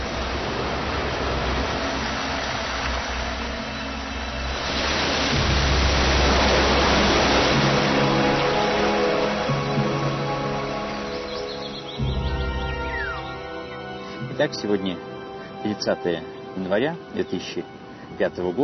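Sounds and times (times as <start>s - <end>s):
heavy rain pouring: 0.0s - 14.5s
speech: 14.4s - 18.6s.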